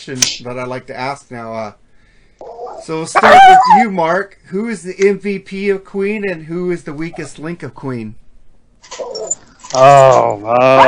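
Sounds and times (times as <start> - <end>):
speech: 0.0 - 1.8, 2.4 - 8.2, 9.7 - 10.8
dog barking: 2.5 - 3.8.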